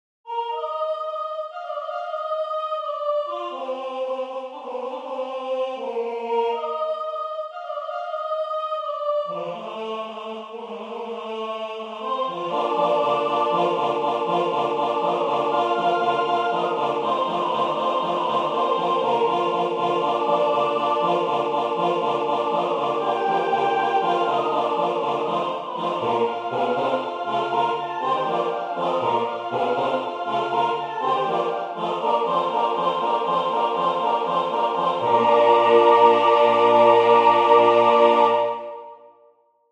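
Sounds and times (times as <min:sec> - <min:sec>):
soprano singing: 0:00.3 - 0:39.0.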